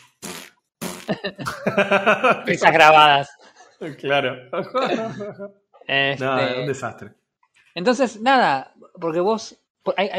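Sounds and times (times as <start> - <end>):
wet sputtering farting: 0.0 - 1.2
laughter: 1.1 - 2.7, 3.8 - 5.5
speech: 1.1 - 7.2, 7.8 - 10.1.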